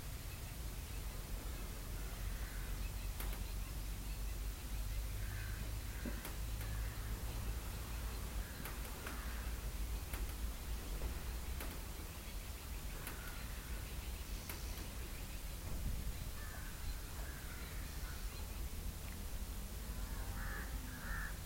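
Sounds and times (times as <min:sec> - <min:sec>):
steady hiss of outdoor noise: 0:00.0 - 0:21.4
crow cawing: 0:02.3 - 0:02.8, 0:05.2 - 0:07.1, 0:08.4 - 0:09.6, 0:13.0 - 0:13.6, 0:16.4 - 0:18.2, 0:20.0 - 0:21.4.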